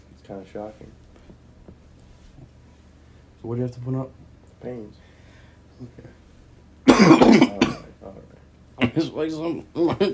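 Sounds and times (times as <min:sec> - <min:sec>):
speech: 0:00.3 - 0:01.0, 0:03.4 - 0:05.1, 0:05.8 - 0:06.2, 0:07.3 - 0:10.1
person clearing throat: 0:06.9 - 0:08.0, 0:09.8 - 0:10.1
person coughing: 0:06.9 - 0:08.0.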